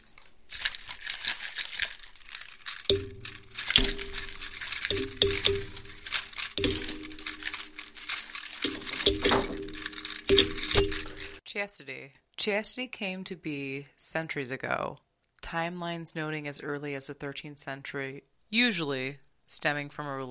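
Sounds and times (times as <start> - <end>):
keys jangling: 0.0 - 11.4
speech: 11.6 - 20.2.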